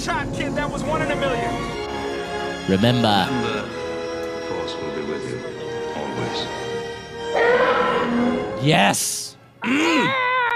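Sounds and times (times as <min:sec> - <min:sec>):
speech: 0:00.0 - 0:01.8, 0:02.6 - 0:03.8, 0:04.5 - 0:06.7, 0:07.3 - 0:10.3
person vocally imitating a sci-fi starfighter screech: 0:09.6 - 0:10.4.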